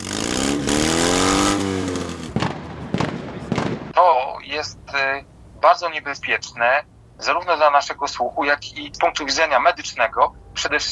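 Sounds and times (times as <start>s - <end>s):
loud modified car engine revving: 0.0s - 3.7s
car exhaust pops: 0.0s - 4.0s
speech: 4.6s - 10.8s.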